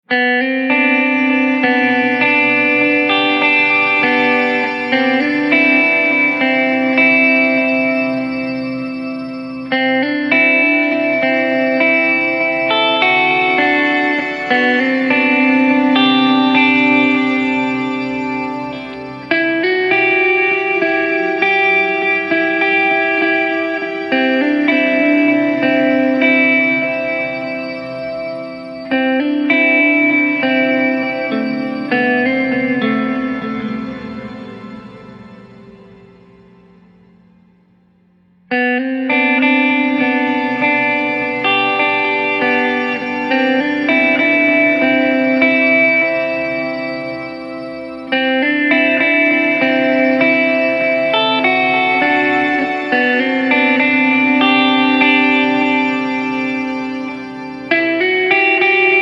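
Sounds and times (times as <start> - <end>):
isolated guitar: 0.0 - 59.0.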